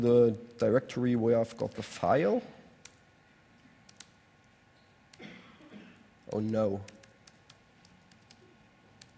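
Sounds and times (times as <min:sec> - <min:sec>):
speech: 0:00.0 - 0:02.6, 0:06.3 - 0:07.0
typing on a computer keyboard: 0:03.8 - 0:04.2, 0:06.2 - 0:09.1.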